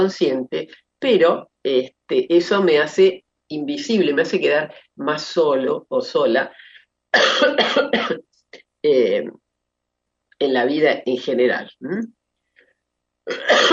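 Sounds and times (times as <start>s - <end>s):
speech: 0.0s - 9.4s, 10.4s - 12.2s, 13.3s - 13.7s
person coughing: 7.2s - 8.2s, 13.3s - 13.7s.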